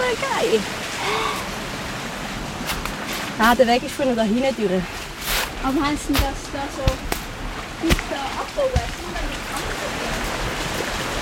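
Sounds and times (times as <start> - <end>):
water running over a small aqueduct: 0.0 - 11.1
speech: 0.2 - 1.6, 3.4 - 5.0, 5.6 - 7.1, 7.8 - 10.0
brief splashy knocks: 5.0 - 11.1.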